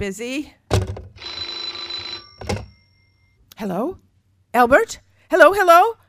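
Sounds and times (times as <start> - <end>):
speech: 0.0 - 0.6, 3.6 - 6.0
old-fashioned telephone bell ringing: 1.2 - 3.4
telephone handling clunks: 2.4 - 2.8.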